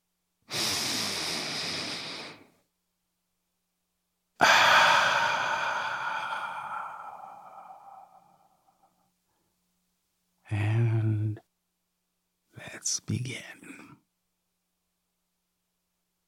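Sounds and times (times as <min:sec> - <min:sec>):
deep breath in and out: 0:00.5 - 0:02.6, 0:04.4 - 0:09.2
speech: 0:12.9 - 0:13.7.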